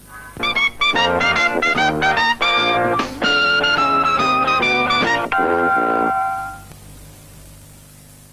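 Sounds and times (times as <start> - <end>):
trumpet playing: 0.4 - 6.7.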